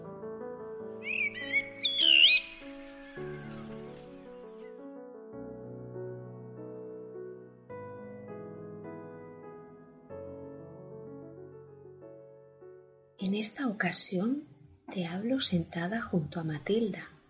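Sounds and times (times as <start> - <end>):
soft instrumental music: 0.0 - 17.2
blackbird song: 0.6 - 4.8
speech: 13.2 - 17.2.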